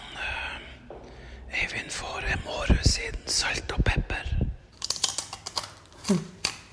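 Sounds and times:
speech: 2.0 - 4.4, 6.1 - 6.3
crunching potato chips while eating: 4.8 - 6.7.

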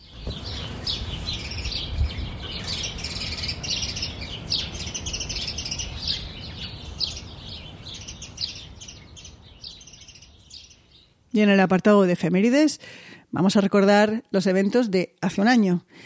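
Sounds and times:
garden birds chirping: 0.0 - 11.6
speech: 11.4 - 16.0.

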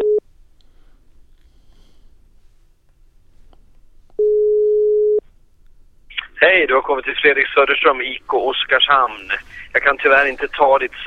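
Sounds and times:
telephone ringback tone on an outgoing call: 4.2 - 5.2
speech: 6.6 - 11.0.

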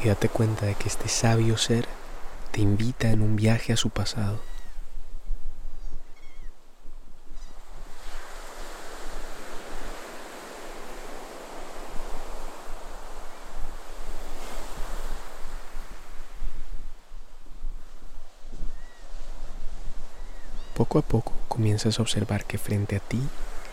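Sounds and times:
speech: 0.0 - 4.5, 20.9 - 23.7
ocean waves breaking on shore: 0.0 - 5.2, 7.2 - 23.7
faint high calls: 4.1 - 4.8.

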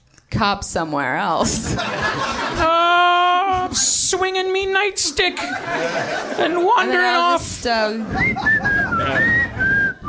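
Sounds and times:
speech: 0.4 - 3.0, 3.7 - 9.7
laughter: 1.4 - 3.2, 5.3 - 9.9
person whistling a wavering tune: 8.1 - 10.0.

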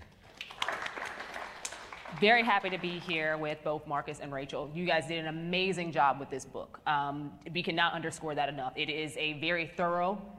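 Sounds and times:
audience applause: 0.2 - 3.1
speech: 2.2 - 10.3.

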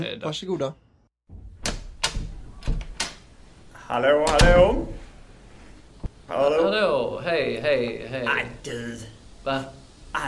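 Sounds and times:
speech: 0.0 - 0.9, 3.9 - 5.0, 6.3 - 10.2
door opening as someone comes in: 1.3 - 3.3, 4.2 - 5.0.

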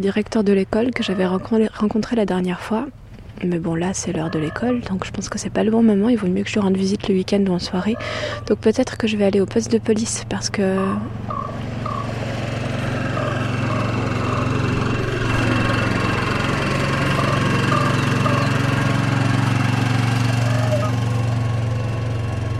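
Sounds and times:
speech: 0.0 - 11.6
quad bike small engine droning: 0.0 - 22.5.

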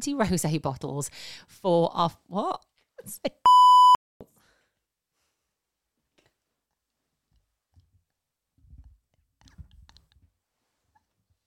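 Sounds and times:
speech: 0.0 - 3.7
electronic censor bleep: 3.5 - 4.0.

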